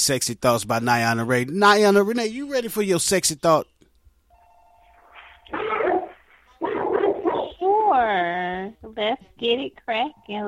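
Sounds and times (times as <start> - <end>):
speech: 0.0 - 3.7, 7.9 - 10.4
dog yelping: 5.5 - 7.6.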